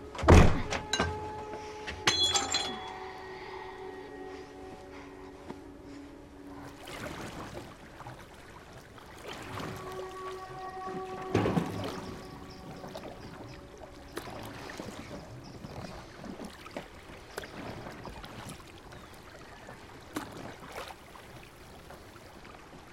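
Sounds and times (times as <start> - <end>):
sustained humming tones: 0.0 - 17.3
water sloshing as a man rows a small boat: 0.0 - 22.9.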